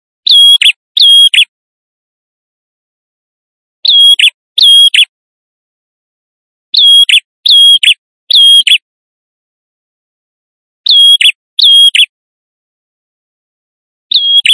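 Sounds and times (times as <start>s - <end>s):
male prinia song with piercing whistles and harsh notes: 0.2s - 1.5s, 3.8s - 5.1s, 6.7s - 8.8s, 10.8s - 12.1s, 14.1s - 14.5s.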